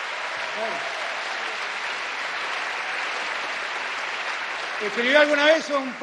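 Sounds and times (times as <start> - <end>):
audience applause: 0.0 - 6.0
speech: 0.6 - 1.0, 4.8 - 6.0.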